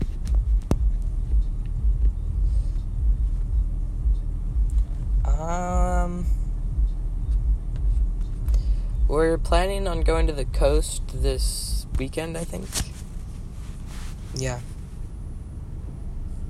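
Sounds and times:
loud deep bass music blasted from a car at a Lowe's: 0.0s - 13.0s
high tonal whine: 0.0s - 16.4s
listener's car vibrating from bass music: 0.0s - 16.4s
speech: 5.4s - 6.4s, 9.1s - 12.9s, 14.4s - 14.7s.

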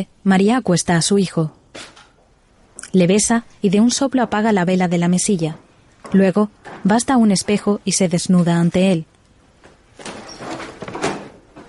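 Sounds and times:
speech: 0.0s - 1.9s, 2.9s - 9.1s
door creaking and knocking: 1.4s - 2.4s, 4.1s - 7.8s, 9.6s - 11.6s
door opening at night: 1.5s - 2.2s, 5.3s - 7.7s, 9.6s - 11.6s.

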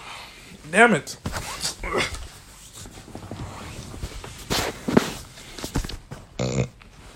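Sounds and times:
shuffling and rustling movement: 0.3s - 7.1s
speech: 0.8s - 1.4s
person burping: 6.4s - 6.8s.

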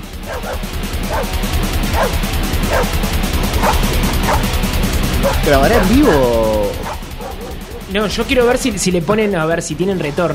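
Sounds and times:
dogs barking in a song recording: 0.0s - 8.1s
loud dense distorted music: 0.0s - 10.3s
speech: 5.4s - 6.6s, 7.9s - 10.3s.

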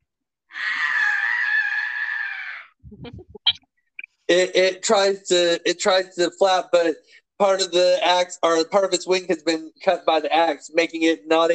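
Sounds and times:
person screeching imitating a bat: 0.5s - 2.8s
speech: 4.3s - 11.5s.

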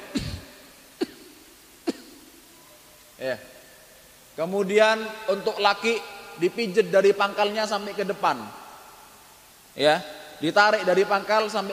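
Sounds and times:
person clearing throat while seated: 0.0s - 2.2s
speech: 3.2s - 3.6s, 4.4s - 8.6s, 9.8s - 11.7s.

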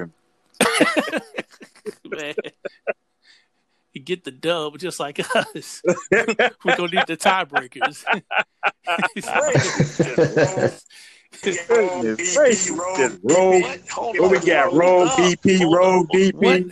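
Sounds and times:
speech: 0.0s - 2.9s, 4.0s - 16.7s
laughter: 0.6s - 3.0s, 5.0s - 16.7s
voices chattering over a call line with echo: 0.8s - 2.9s, 4.6s - 16.7s.

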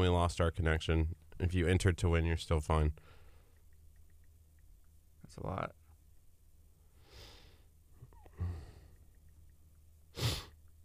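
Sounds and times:
speech: 0.0s - 3.2s, 5.4s - 5.8s
faint hum: 0.0s - 10.8s
person sniffing into the microphone: 10.1s - 10.6s.

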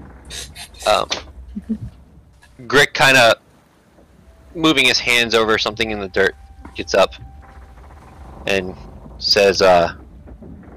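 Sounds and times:
faint low bumps as things settle: 0.0s - 10.7s
speech: 0.8s - 1.9s, 2.6s - 3.4s, 4.5s - 7.2s, 8.4s - 10.0s
door rattling and scraping: 6.6s - 10.7s.

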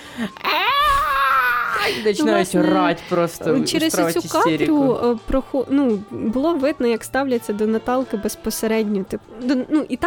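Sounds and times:
speech: 0.2s - 0.7s, 1.8s - 10.0s
adult voice mimicking a whining, crying child with a nasal wail: 0.4s - 2.0s.

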